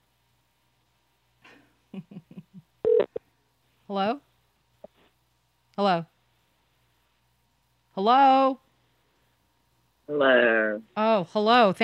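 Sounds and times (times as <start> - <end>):
longer louder telephone tone: 2.9 - 3.2
speech: 3.9 - 4.3, 5.8 - 6.1, 8.0 - 8.6, 10.1 - 11.8.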